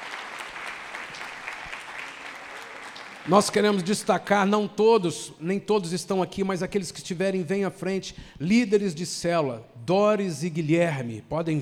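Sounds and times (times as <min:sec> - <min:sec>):
church congregation applauding at a New Year's Eve worship service: 0:00.0 - 0:04.0
speech: 0:03.2 - 0:11.6.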